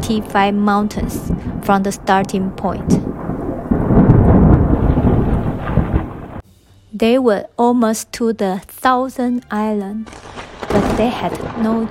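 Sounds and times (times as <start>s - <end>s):
heavy rain on a stormy night: 0.0s - 6.4s, 10.1s - 11.9s
loud deep thunder rumbling: 0.0s - 6.4s, 10.1s - 11.9s
strong wind on a stormy night: 0.0s - 6.4s
speech: 0.1s - 3.1s, 7.0s - 11.9s.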